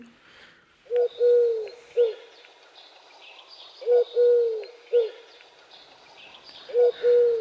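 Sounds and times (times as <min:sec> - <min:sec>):
Eurasian collared dove cooing: 0:01.0 - 0:02.2, 0:03.9 - 0:05.2, 0:06.7 - 0:07.3.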